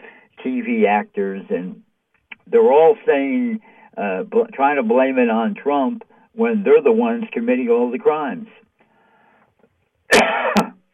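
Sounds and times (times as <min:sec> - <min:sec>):
speech: 0:00.5 - 0:01.8, 0:02.5 - 0:08.6
single harsh raspy cough: 0:10.1 - 0:10.8.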